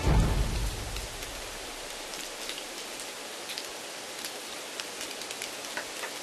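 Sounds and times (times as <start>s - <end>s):
low rumble: 0.0s - 2.3s
steady rain falling: 0.0s - 6.2s.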